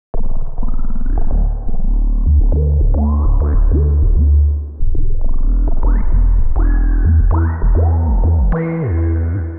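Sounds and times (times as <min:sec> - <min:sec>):
funk bass loop: 0:00.2 - 0:09.5.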